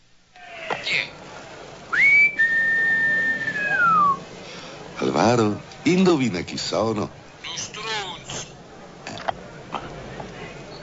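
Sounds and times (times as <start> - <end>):
person whistling into a house door intercom in Naples: 2.0 - 4.2
speech: 5.0 - 7.8.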